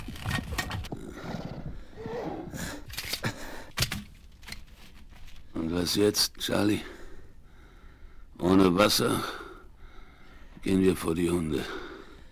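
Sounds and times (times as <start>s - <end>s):
horses snorting as riders halt: 0.4s - 2.9s
speech: 5.8s - 6.9s, 8.5s - 9.4s, 10.6s - 11.8s.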